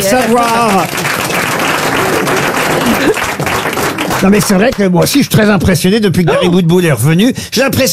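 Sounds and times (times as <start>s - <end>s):
speech: 0.0s - 1.0s, 4.2s - 7.9s
crowd applauding: 0.0s - 5.2s.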